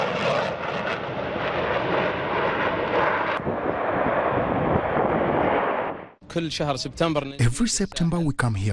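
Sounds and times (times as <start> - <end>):
jet aircraft roaring past during flyovers and aerobatic displays at an air show in El Alamein: 0.0 - 6.2
speech: 6.3 - 8.7.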